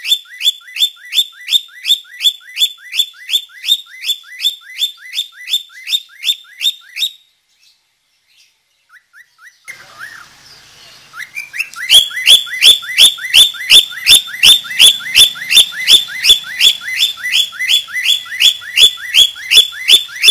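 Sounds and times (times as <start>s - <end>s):
budgerigar song of bright upward-sweeping whistled chirps: 0.0s - 7.3s, 8.9s - 10.3s, 11.0s - 20.3s
budgerigar sharp clicks: 11.2s - 20.3s.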